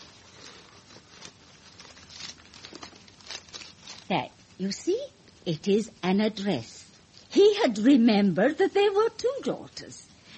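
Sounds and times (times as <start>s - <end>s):
paper rustling and crinkling as it is drawn out of a handbag: 0.0s - 4.6s
speech: 4.1s - 10.0s.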